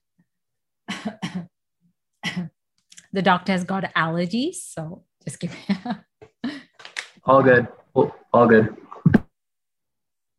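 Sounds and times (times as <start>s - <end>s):
harsh coughing fit: 0.9s - 1.6s
speech: 3.1s - 6.1s, 7.3s - 8.8s.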